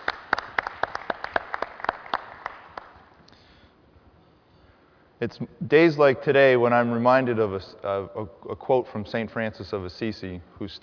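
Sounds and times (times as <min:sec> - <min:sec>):
small audience applauding: 0:00.0 - 0:03.0
speech: 0:05.2 - 0:10.8.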